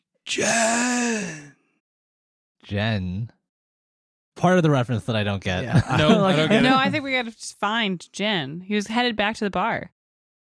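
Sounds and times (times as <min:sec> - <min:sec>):
speech: 0:00.3 - 0:01.4, 0:02.7 - 0:03.4, 0:04.4 - 0:10.0
person voicing the last gasp of a dying creature in a tabletop role-playing game: 0:00.3 - 0:01.6
laughter: 0:05.6 - 0:07.1.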